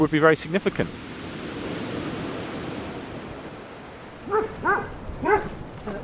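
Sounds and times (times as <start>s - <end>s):
speech: 0.0s - 1.1s
surf: 0.0s - 6.0s
wind: 0.0s - 6.0s
sharp dog barks: 4.2s - 5.6s.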